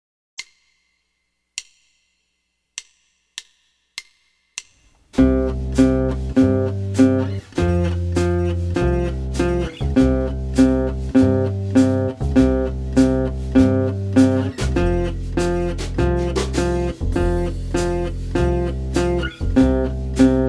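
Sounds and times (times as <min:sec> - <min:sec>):
twelve-bar blues root notes on string 5: 0:05.2 - 0:20.4.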